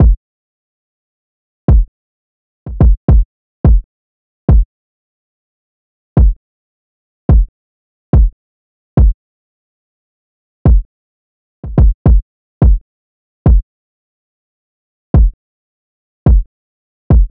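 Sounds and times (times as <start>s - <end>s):
kick drum loop at 107 BPM: 0.0s - 0.2s, 1.7s - 1.9s, 2.7s - 3.8s, 6.2s - 6.4s, 7.3s - 7.5s, 8.1s - 8.3s, 10.7s - 10.9s, 11.6s - 12.8s, 15.2s - 15.4s, 16.3s - 16.5s, 17.1s - 17.3s.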